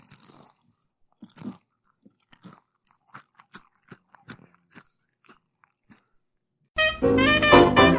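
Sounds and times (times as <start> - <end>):
person chewing something crisp: 0.0 - 6.5
music: 6.8 - 7.9.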